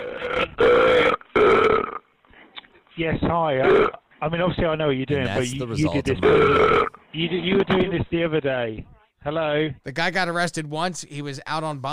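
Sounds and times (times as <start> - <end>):
man burping into a 911 emergency call: 0.0 - 2.1, 5.2 - 7.0
speech: 3.0 - 11.9.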